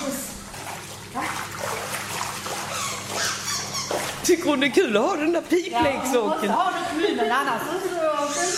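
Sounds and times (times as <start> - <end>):
dog paddling and splashing in water: 0.4 - 4.9
speech: 4.3 - 8.5.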